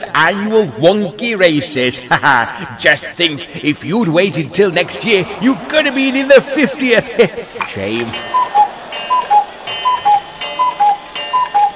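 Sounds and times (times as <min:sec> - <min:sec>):
speech: 0:00.2 - 0:08.6
laughter: 0:02.0 - 0:10.5
cuckoo clock ticking: 0:08.0 - 0:11.7
short high-low two-note chirp of a cuckoo clock: 0:08.1 - 0:11.7.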